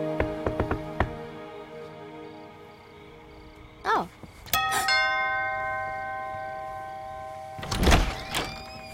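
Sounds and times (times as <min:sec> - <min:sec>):
dull bump: 0:00.1 - 0:01.4
doorbell chiming outside the house: 0:04.5 - 0:08.9.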